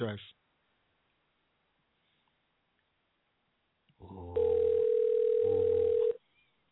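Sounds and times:
speech: 0.0 - 0.4
telephone dial tone: 4.4 - 6.2.

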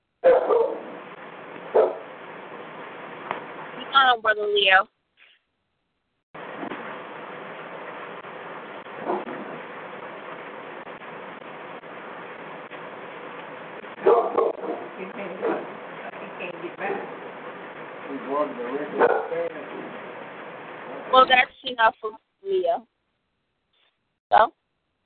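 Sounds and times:
pet dog barking: 0.2 - 0.9, 1.7 - 2.1, 9.0 - 9.4, 14.0 - 15.8, 19.0 - 19.4
speech: 4.1 - 5.0, 21.1 - 22.9, 24.3 - 24.6.

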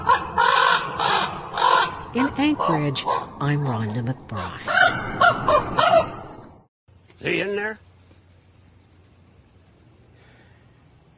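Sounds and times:
white raven cawing in an Anchorage winter: 0.0 - 3.4, 4.4 - 6.4
speech: 2.1 - 5.3, 7.2 - 7.9.

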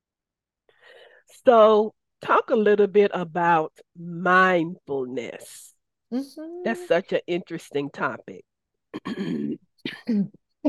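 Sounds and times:
speech: 1.4 - 10.6
person clearing throat: 9.0 - 10.6
person coughing: 9.0 - 10.6.

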